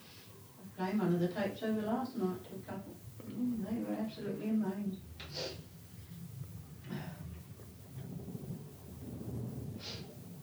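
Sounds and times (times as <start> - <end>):
low rumbling noise: 0.0 - 10.4
speech: 0.8 - 5.7
airy nasal sniffs from a person with a cold: 5.2 - 5.7.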